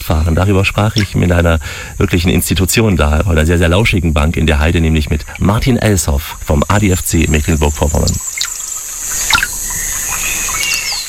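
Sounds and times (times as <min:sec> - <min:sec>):
speech: 0:00.1 - 0:08.3
water trickling beside a bench in the Rostocker Heide heathland Germany: 0:00.6 - 0:02.4, 0:04.3 - 0:11.0
bird chirps: 0:07.3 - 0:11.0.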